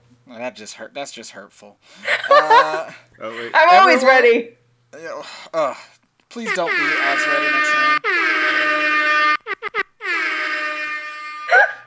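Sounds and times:
speech: 0:00.3 - 0:08.0
laughter: 0:02.0 - 0:03.5, 0:06.5 - 0:08.0
air horn blasting: 0:06.4 - 0:11.8.

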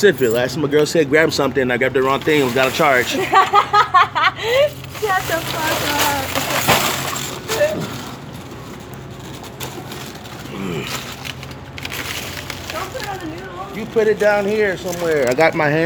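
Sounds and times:
speech: 0:00.0 - 0:06.7, 0:10.6 - 0:11.1, 0:12.8 - 0:15.8
plastic water bottle case crinkling: 0:02.0 - 0:15.8
laughter: 0:03.0 - 0:04.8.

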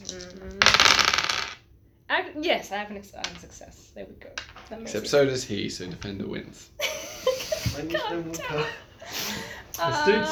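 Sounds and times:
dice clattering across a hard table: 0:00.0 - 0:01.6, 0:04.4 - 0:04.8
speech: 0:02.4 - 0:07.0, 0:07.8 - 0:10.3
laughter: 0:06.8 - 0:10.3.

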